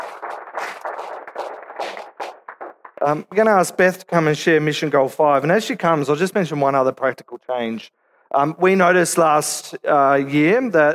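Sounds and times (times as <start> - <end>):
audience applause after a presentation: 0.0 - 3.2
speech: 3.0 - 10.9.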